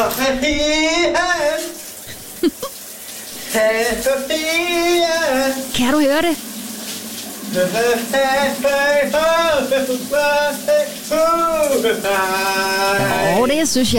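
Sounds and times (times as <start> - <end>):
speech: 0.0 - 1.8, 3.5 - 6.5, 7.5 - 13.9
man singing while showering: 0.0 - 1.9, 3.4 - 5.7, 7.6 - 13.9
running shower water: 0.0 - 13.9.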